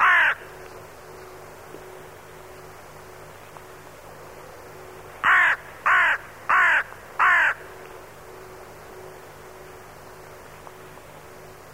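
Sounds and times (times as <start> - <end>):
crow cawing: 0.0 - 0.5, 5.2 - 7.7.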